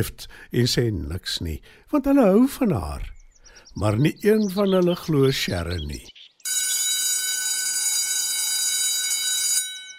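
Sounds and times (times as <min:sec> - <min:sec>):
speech: 0:00.0 - 0:06.2
loud electric school bell ringing: 0:06.4 - 0:09.9.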